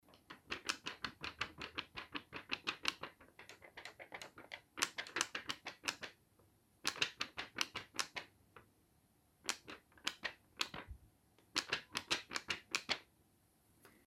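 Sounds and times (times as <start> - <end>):
dollar banknotes being shaken quickly: 0.1 - 6.2, 6.9 - 8.3, 9.5 - 10.9, 11.5 - 13.0.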